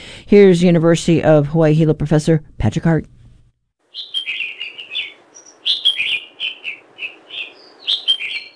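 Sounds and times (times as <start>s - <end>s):
speech: 0.3s - 3.2s
red-whiskered bulbul calling on Oahu: 3.9s - 8.5s.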